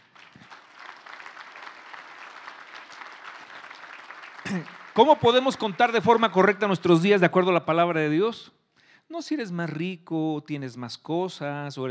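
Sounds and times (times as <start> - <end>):
audience applauding: 0.0 - 7.0
speech: 4.5 - 11.9.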